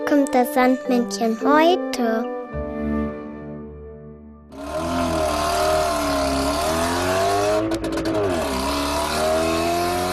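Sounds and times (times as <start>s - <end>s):
speech: 0.1s - 2.3s
car engine accelerating through gear changes: 4.5s - 10.1s.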